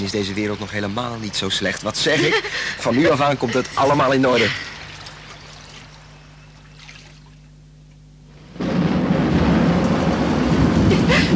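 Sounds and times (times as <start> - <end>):
speech: 0.0 - 4.7
laughter: 2.0 - 4.8
rolling thunder in a thunderstorm: 8.3 - 11.3.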